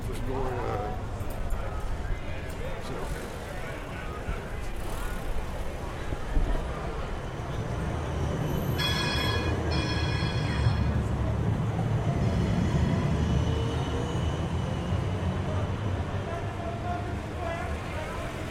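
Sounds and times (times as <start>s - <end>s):
people talking: 0.0s - 11.6s, 15.3s - 18.4s
traffic rumble: 0.0s - 18.4s
trams approaching from both directions along a street tram track: 0.0s - 18.4s
brief ringing tone: 8.8s - 11.0s.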